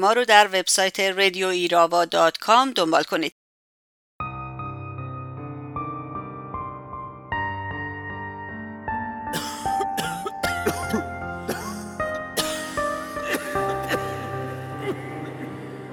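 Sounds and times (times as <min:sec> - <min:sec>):
speech: 0:00.0 - 0:03.4
dry coughing: 0:09.3 - 0:15.4.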